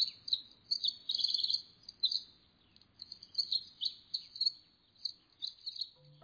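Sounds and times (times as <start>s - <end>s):
Eurasian wren singing: 0.0s - 6.2s
faint low rumble: 6.0s - 6.2s.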